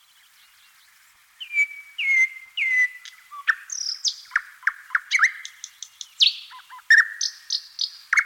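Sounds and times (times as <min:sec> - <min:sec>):
thrush nightingale Luscinia luscinia song of slurred whistles and piping phrases: 0:00.0 - 0:08.2.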